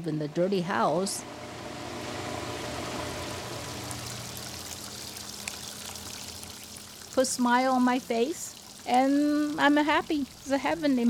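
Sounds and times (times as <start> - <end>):
speech: 0.0 - 1.5, 7.2 - 11.0
water flowing into a backyard koi pond: 3.0 - 11.0
soft splashy water droplets: 4.0 - 11.0.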